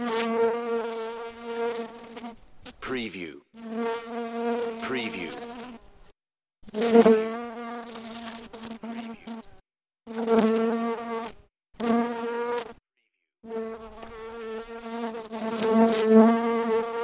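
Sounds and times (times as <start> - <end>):
bumblebee buzzing: 0.0 - 2.8, 3.6 - 6.0, 6.6 - 12.8, 13.4 - 17.0.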